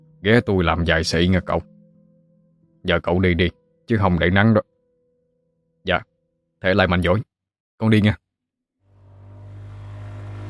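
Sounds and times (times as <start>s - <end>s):
speech: 0.2s - 1.7s, 2.8s - 4.7s, 5.8s - 8.2s
motorbike throttling and speeding away from a fishing village: 8.8s - 10.4s.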